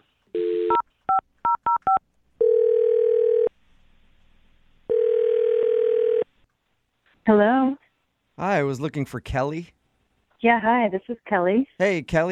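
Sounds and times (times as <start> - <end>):
long steady telephone ringing tones: 1.5 - 3.5, 4.9 - 6.3
telephone dial tone: 2.4 - 3.5, 4.9 - 6.3
speech: 7.3 - 7.5, 8.6 - 9.8, 10.4 - 12.3.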